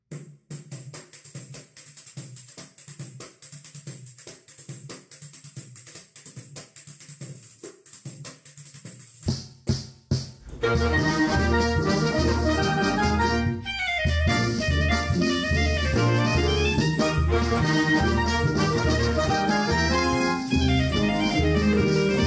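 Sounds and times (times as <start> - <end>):
clarinet: 10.4 - 22.2.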